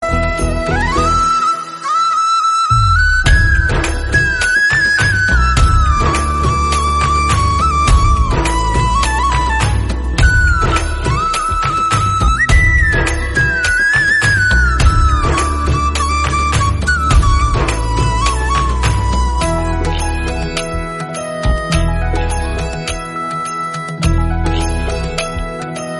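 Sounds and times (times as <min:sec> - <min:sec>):
Malayalam flute background music: 0:00.0 - 0:25.9.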